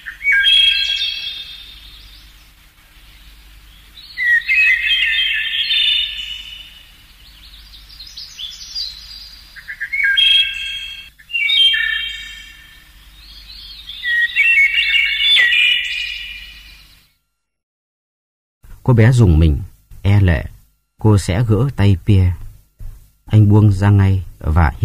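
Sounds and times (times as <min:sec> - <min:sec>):
nightingale singing bright rapid trilling song: 0:00.0 - 0:17.1
speech: 0:18.9 - 0:22.4, 0:23.4 - 0:24.8.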